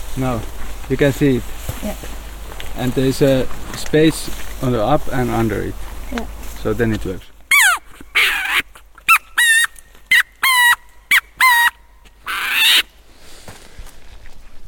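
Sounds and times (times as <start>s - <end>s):
speech: 0.2s - 2.2s, 2.8s - 7.3s
handheld bird call imitating a bird's cry: 7.5s - 12.8s.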